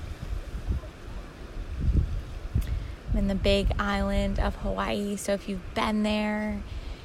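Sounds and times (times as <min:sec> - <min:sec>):
low rumbling ocean waves: 0:00.0 - 0:07.0
windy breathy background: 0:00.0 - 0:07.0
speech: 0:03.2 - 0:06.8.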